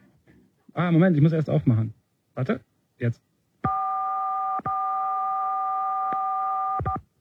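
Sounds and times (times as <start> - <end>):
speech: 0.8 - 3.3
telephone keypad DTMF tone for the sixth digit: 3.7 - 7.0.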